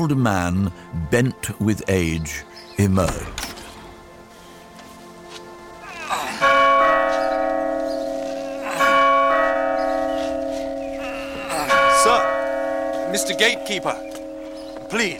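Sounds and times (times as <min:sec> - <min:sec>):
speech: 0:00.0 - 0:03.5, 0:13.1 - 0:14.2, 0:14.9 - 0:15.1
great bell tolling at a gate: 0:06.4 - 0:15.1.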